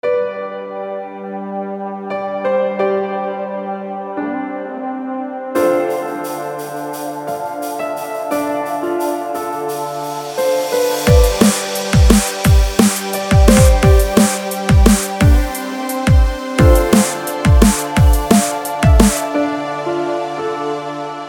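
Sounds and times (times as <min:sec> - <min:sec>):
piano: 0:00.0 - 0:21.2
drums: 0:05.6 - 0:19.4.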